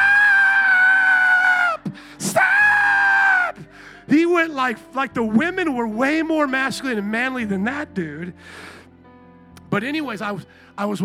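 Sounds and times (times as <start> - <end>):
voice imitating a father screaming: 0.0 - 3.7
sharp noisy gasp for breath: 1.9 - 2.2, 3.7 - 4.1, 8.4 - 8.9
speech: 2.0 - 2.5, 4.1 - 8.8, 9.7 - 11.0.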